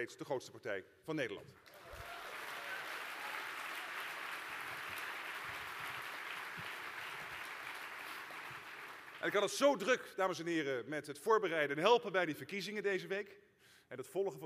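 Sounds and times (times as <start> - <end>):
speech: 0.0 - 2.0, 9.2 - 14.4
dense applause from a large audience: 1.7 - 9.4.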